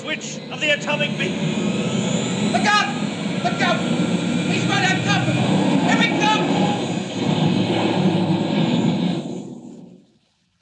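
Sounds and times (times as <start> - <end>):
airplane engine roaring: 0.0 - 10.1
planes crashing: 0.0 - 10.1
speech: 0.1 - 5.6.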